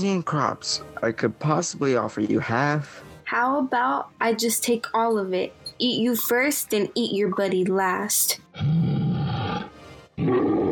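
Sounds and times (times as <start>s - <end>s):
speech: 0.0s - 8.9s
lion roaring: 8.5s - 10.7s.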